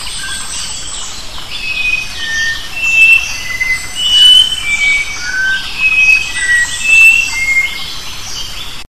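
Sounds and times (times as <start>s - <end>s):
Sooty-capped babbler giving pure level whistles: 1.7s - 7.8s.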